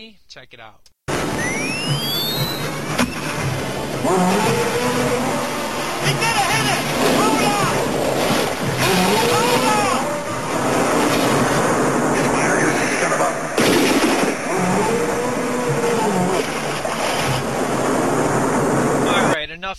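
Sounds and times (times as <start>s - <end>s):
speech: 0.0s - 5.1s
water churning and splashing as a shark leaps from water in a film scene: 1.1s - 19.3s
shark roaring deep bellowing roars in a film scene: 3.4s - 12.4s, 13.2s - 19.3s.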